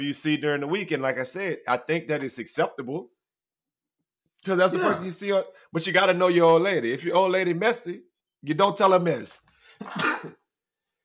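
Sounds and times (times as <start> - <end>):
speech: 0.0 - 3.2, 4.4 - 10.4
person sneezing: 4.7 - 5.1, 9.8 - 10.4.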